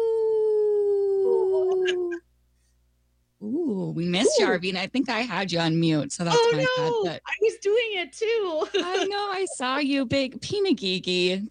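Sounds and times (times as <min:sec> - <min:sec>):
person imitating a wolf howl: 0:00.0 - 0:02.2
speech: 0:04.0 - 0:11.4.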